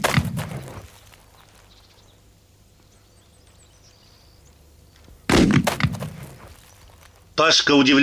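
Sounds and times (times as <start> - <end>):
double-barrelled hunting gun shots fired at a hat on the ground: 0.0 - 0.9, 5.2 - 6.6
speech: 7.4 - 8.0.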